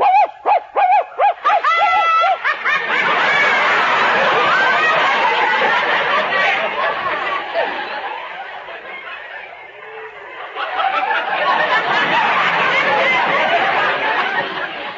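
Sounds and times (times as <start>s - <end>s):
dog barking with high yapping barks: 0.0s - 1.6s
loud dense laughter: 0.0s - 14.9s
people chattering: 0.0s - 14.9s.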